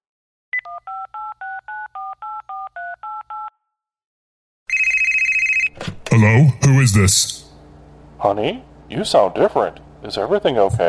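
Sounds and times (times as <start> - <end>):
loud rapidly pulsing telephone ring tone: 0.6 - 3.7, 4.7 - 5.7
speech: 6.2 - 7.5, 8.2 - 10.8.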